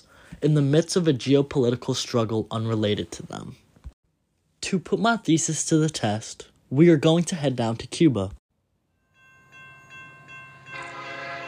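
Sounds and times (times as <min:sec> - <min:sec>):
speech: 0:00.4 - 0:03.6, 0:04.7 - 0:08.4
underwater train horn: 0:10.6 - 0:11.4.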